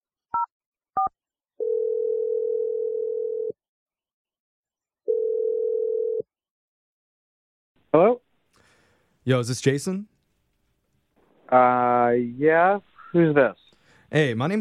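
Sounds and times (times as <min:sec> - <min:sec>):
long steady mid-pitched telephone ringing tones: 0:01.6 - 0:03.6, 0:05.1 - 0:06.2
speech: 0:09.3 - 0:10.1, 0:11.5 - 0:14.5.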